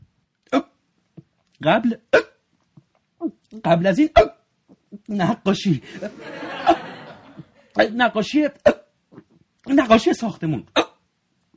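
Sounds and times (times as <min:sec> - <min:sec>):
sharp hiccups: 0:00.4 - 0:00.8, 0:02.0 - 0:02.4, 0:03.2 - 0:04.8, 0:08.6 - 0:09.4, 0:10.7 - 0:11.1
speech: 0:01.6 - 0:02.3, 0:03.6 - 0:04.3, 0:05.1 - 0:06.8, 0:07.8 - 0:08.7, 0:09.8 - 0:10.7
laughter: 0:05.9 - 0:07.7.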